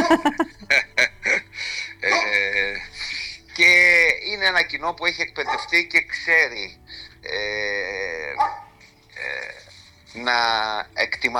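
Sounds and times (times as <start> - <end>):
laughter: 0.0 - 3.3
speech: 0.1 - 0.8, 3.6 - 11.3
dog barking in drawn-out tonal calls: 5.4 - 5.8, 8.4 - 8.8.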